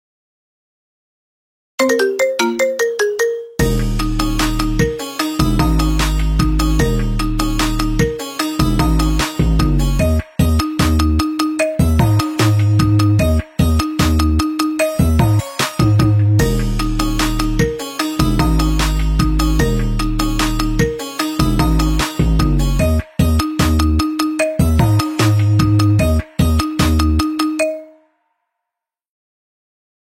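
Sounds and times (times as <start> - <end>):
marimba: 1.8 - 28.0.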